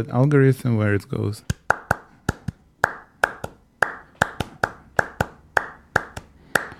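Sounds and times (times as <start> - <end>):
speech: 0.0 - 1.6
rhythmic hand clapping: 1.5 - 6.7.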